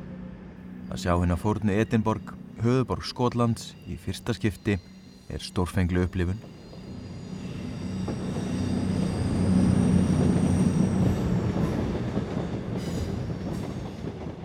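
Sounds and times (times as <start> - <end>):
speech: 0.9 - 6.6
train wheels rumbling on track at Waverley Station in Edinburgh: 5.6 - 14.4
train wheel squeal: 6.4 - 11.3.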